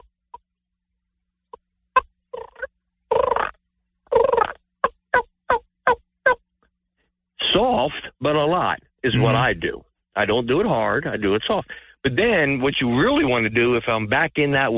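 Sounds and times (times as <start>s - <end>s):
hen turkey clucks and yelps played on a turkey call: 4.1s - 6.4s
speech: 7.6s - 14.7s.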